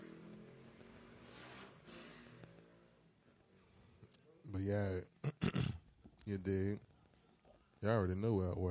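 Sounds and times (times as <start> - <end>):
motorbike engines revving outside: 0.0 - 3.1
speech: 4.5 - 5.4, 6.3 - 6.9, 7.8 - 8.6.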